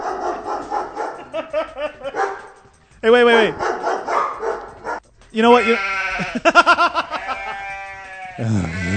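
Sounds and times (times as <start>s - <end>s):
laughter: 1.1s - 2.2s, 6.2s - 7.8s
speech: 3.0s - 3.7s, 5.4s - 7.0s, 8.4s - 8.9s
single wavering sheep bleating: 5.5s - 8.9s.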